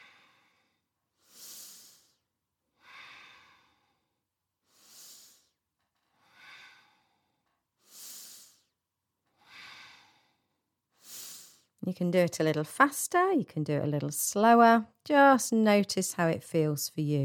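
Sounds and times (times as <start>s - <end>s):
slow deep relaxation breathing: 0.0s - 11.8s
speech: 11.9s - 17.2s.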